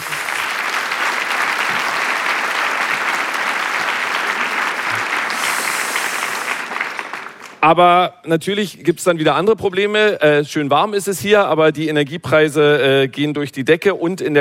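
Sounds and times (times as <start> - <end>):
audience applause at a cultural event in December: 0.0 - 7.7
speech: 7.6 - 14.3.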